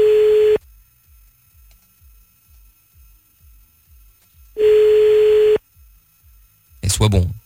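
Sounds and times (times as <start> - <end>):
telephone ringing tone while a call is placed: 0.0 - 0.6, 4.6 - 5.6
speech: 6.9 - 7.4.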